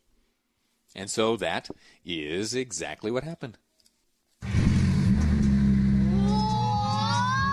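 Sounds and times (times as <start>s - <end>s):
speech: 1.0s - 3.6s
Lamborghini engine revved by a young boy: 4.4s - 7.4s.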